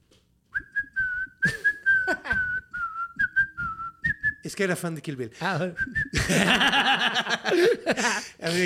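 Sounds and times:
person whistling a slow movie theme tune: 0.5 - 4.4, 5.8 - 6.3
speech: 4.4 - 8.6
laughter: 6.2 - 8.6.

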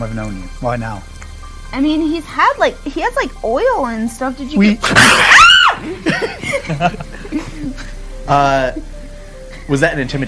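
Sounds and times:
speech: 0.0 - 1.1, 1.7 - 9.0, 9.7 - 10.2
person screaming high-pitched: 5.0 - 5.8
laughter: 5.8 - 8.0.

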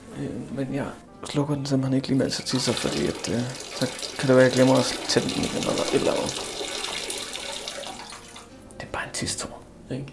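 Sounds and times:
speech: 0.2 - 6.6, 9.2 - 10.1
juice pouring into a cup: 2.3 - 8.5.

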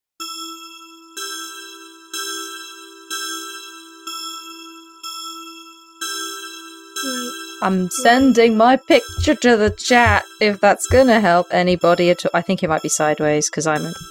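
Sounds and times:
resonant bell strikes from a set of bells: 7.1 - 11.4
speech: 7.6 - 14.0.

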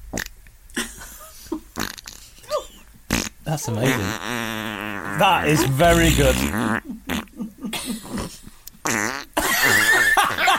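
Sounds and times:
voice imitating a fart with raspberry bursts: 0.1 - 0.4, 1.8 - 2.3, 3.1 - 7.4, 8.0 - 9.8
speech: 3.5 - 4.4, 5.2 - 7.0.

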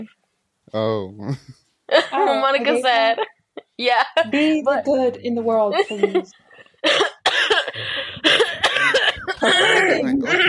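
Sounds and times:
speech: 0.0 - 7.2, 9.4 - 10.4
laughter: 5.8 - 6.9, 7.7 - 10.4
person coughing harshly: 6.9 - 10.4.

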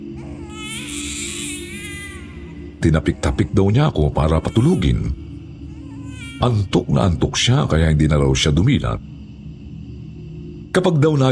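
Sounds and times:
low steady hum: 0.0 - 11.3
baby crying in a long wavering wail: 0.2 - 6.7
speech: 2.8 - 5.3, 6.4 - 9.1, 10.8 - 11.3.

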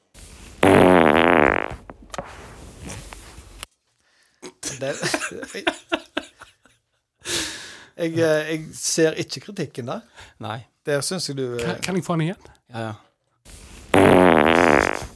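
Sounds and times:
loud buzzy sputtering fart: 0.6 - 3.0, 13.9 - 15.1
rustling: 1.5 - 4.4
laughter: 4.6 - 6.8
speech: 4.8 - 6.0, 8.0 - 13.1.

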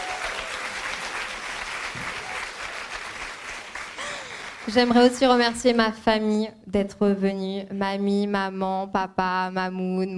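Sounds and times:
faint voices and cheers: 0.0 - 1.2
large live audience applauding: 0.0 - 5.2
speech: 4.7 - 10.1.

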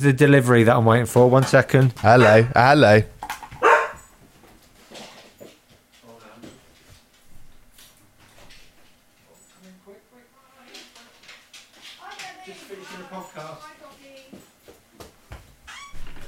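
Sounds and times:
speech: 0.0 - 3.2
dog barking and yipping: 2.2 - 2.6, 3.6 - 4.1.

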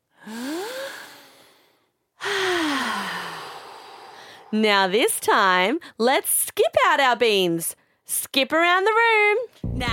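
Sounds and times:
slow breathing during a group movement game: 0.0 - 4.6
speech: 4.5 - 9.9.

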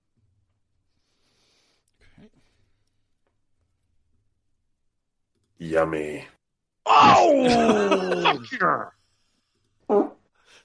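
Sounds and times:
speech: 5.6 - 6.4, 7.2 - 9.0
laughter: 7.4 - 8.5
fart: 9.9 - 10.3.

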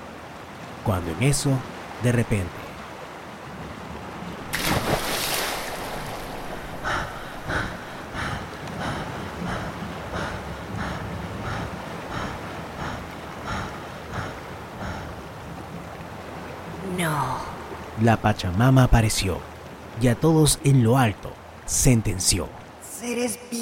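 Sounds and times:
sea waves: 0.0 - 23.6
speech: 0.8 - 2.6, 18.0 - 23.6.

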